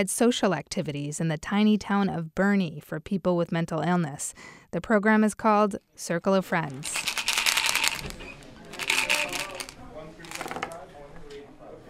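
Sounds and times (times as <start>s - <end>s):
speech: 0.0s - 7.1s
faint murmur of people talking at a social activity program: 6.5s - 11.8s
playing cards riffling and shuffling during poker: 6.7s - 10.8s.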